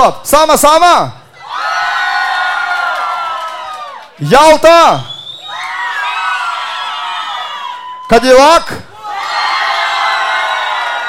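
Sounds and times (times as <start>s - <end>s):
man calling out over a loudspeaker: 0.0s - 1.2s, 4.2s - 5.1s, 8.1s - 8.9s
speech: 0.0s - 1.2s, 4.2s - 5.1s, 8.1s - 8.9s
large concert crowd shouting and cheering: 1.2s - 11.0s.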